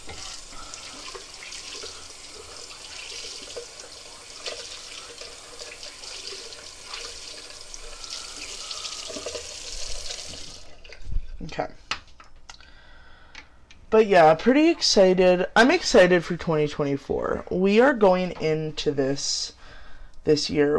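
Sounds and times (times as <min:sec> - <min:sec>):
tap water splashing into a sink: 0:00.0 - 0:11.0
speech: 0:11.6 - 0:11.9, 0:13.9 - 0:19.6, 0:20.2 - 0:20.7.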